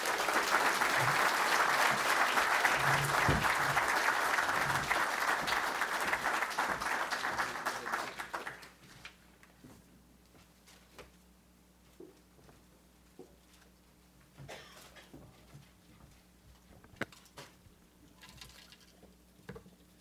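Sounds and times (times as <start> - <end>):
large audience applauding a speaker: 0.0 - 8.8.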